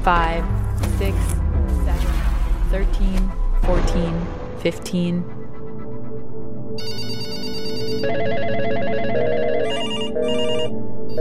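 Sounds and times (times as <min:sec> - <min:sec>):
speech: 0:00.0 - 0:01.4, 0:02.7 - 0:05.6
several telephones ringing at once: 0:06.8 - 0:11.2.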